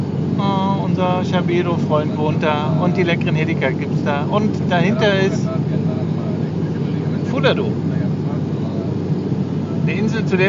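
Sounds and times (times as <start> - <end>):
airplane engines droning heard from inside the cabin during flight: 0.0 - 10.4
speech: 1.0 - 5.6, 7.4 - 8.0, 9.8 - 10.4.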